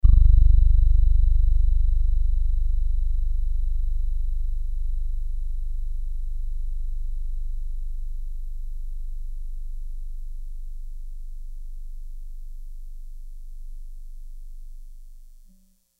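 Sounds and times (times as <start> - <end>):
piano note G plus 4: 0.0 - 6.6.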